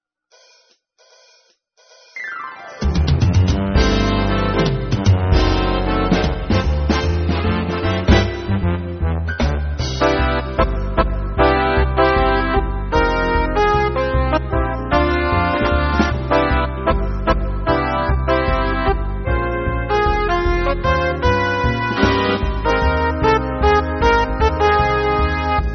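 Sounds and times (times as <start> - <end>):
synthesizer: 2.2 - 25.7.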